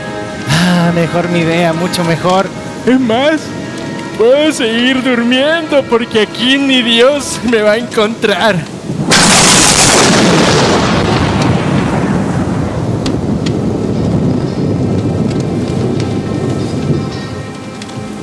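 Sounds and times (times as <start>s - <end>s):
steady rain: 0.0s - 18.2s
speech: 0.9s - 3.6s, 4.2s - 8.8s
loud thunderclap: 8.7s - 18.2s.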